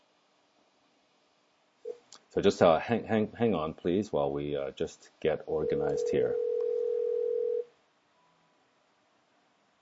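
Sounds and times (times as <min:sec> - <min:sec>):
faint hiss: 0:00.0 - 0:09.8
speech: 0:02.3 - 0:06.4
telephone dial tone while placing a call: 0:05.6 - 0:07.7.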